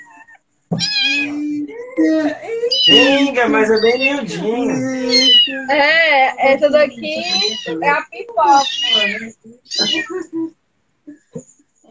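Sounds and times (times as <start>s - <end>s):
very small kitten meowing high-pitched: 0.1s - 1.4s, 2.7s - 4.4s, 5.0s - 5.7s, 7.1s - 10.3s
speech: 0.7s - 10.6s.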